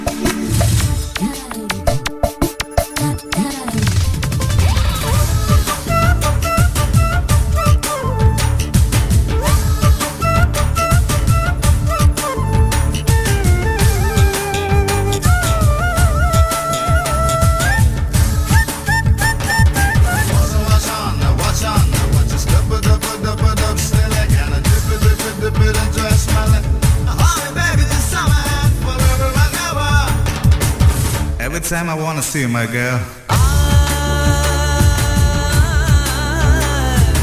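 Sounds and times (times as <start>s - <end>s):
film song with driving rhythmic beat and sung vocals: 0.0s - 37.2s
speech: 31.9s - 33.2s.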